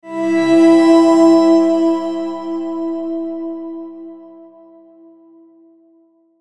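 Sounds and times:
tonal shimmer sonic logo: 0.1 - 4.1.

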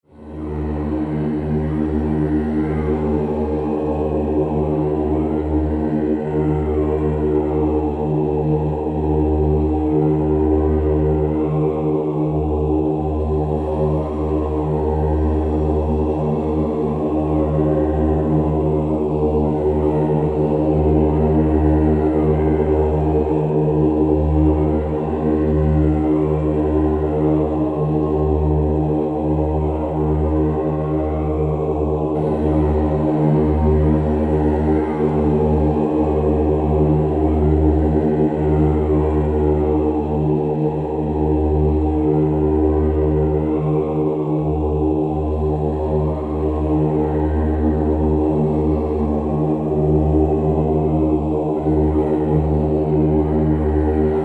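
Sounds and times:
drone vocal monk chant: 0.0 - 54.2.

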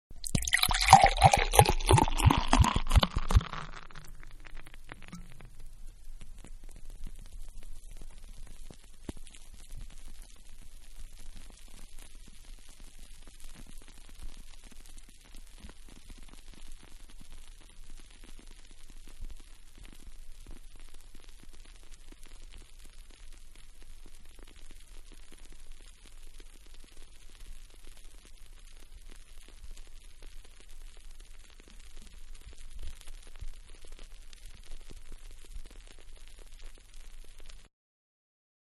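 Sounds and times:
beer pouring from a bottle into a glass: 0.1 - 5.5.

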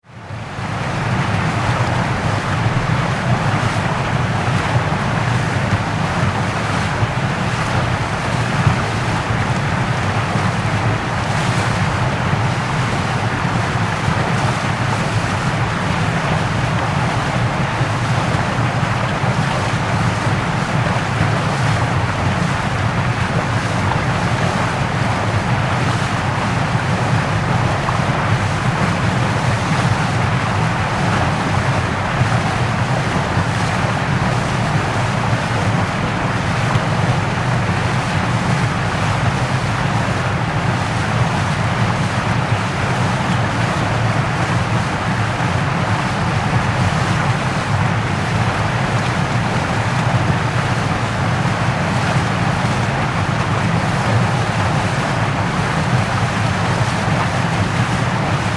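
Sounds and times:
waterfall with heavy sheets of water falling: 0.1 - 58.5.

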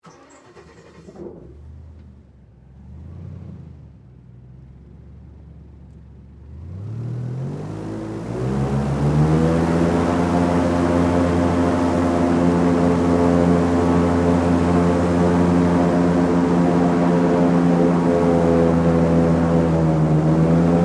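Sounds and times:
airboat engine starting and running, heard on board: 0.0 - 2.3, 6.5 - 20.8.

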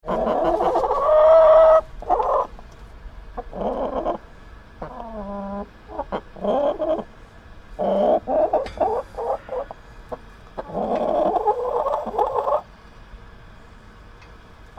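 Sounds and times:
caged chicken squawking: 0.0 - 2.5, 3.4 - 4.2, 4.8 - 7.0, 7.8 - 9.8, 10.6 - 12.6
caged chickens clucking and cackling: 0.0 - 2.7, 3.3 - 12.7.

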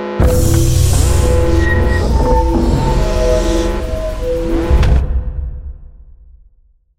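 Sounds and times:
sci-fi cargo door space station air lock seal on spacecraft: 0.2 - 5.6.

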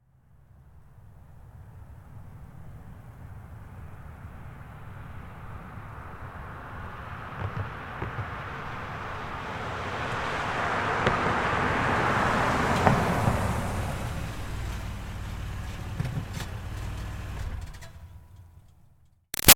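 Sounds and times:
2005 Toyota Highlander V6 driving up and stopping: 1.1 - 19.0.

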